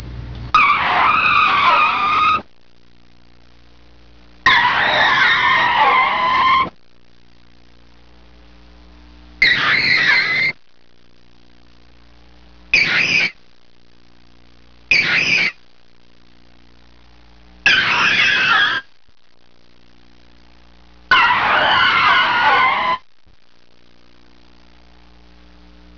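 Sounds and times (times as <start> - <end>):
car tyres screeching: 0.6 - 2.5, 4.5 - 6.7, 9.4 - 10.6, 12.8 - 13.4, 14.9 - 15.6, 17.7 - 18.9, 21.1 - 23.0.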